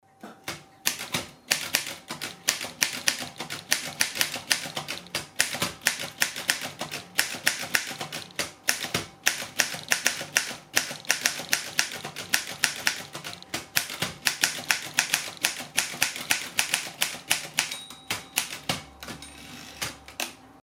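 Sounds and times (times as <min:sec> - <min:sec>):
Groma Modell N typewriter: 0:00.8 - 0:20.4.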